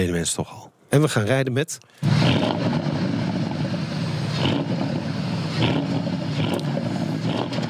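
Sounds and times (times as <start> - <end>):
speech: 0.0 - 3.0
Porsche Panamera Sport Turismo Turbo engine revving: 2.0 - 7.6.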